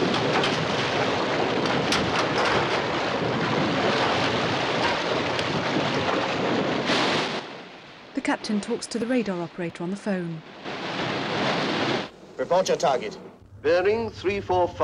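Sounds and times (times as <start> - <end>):
ship speeding over ocean waves: 0.0 - 14.8
speech: 8.4 - 10.5, 12.5 - 14.8.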